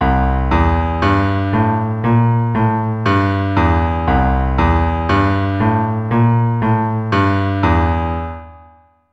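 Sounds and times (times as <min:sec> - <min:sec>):
walking bass on keyboard: 0:00.0 - 0:08.6.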